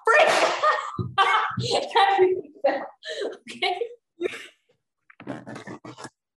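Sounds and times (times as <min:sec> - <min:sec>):
laughter: 0:00.0 - 0:04.5
fingernails scraping duct tape on the side of a bin: 0:05.1 - 0:06.2.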